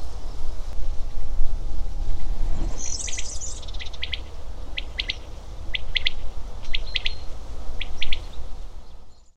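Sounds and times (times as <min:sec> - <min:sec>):
steady low rumble: 0:00.0 - 0:09.1
common quail Coturnix coturnix coturnix calling in short pulsed bursts: 0:02.8 - 0:08.4.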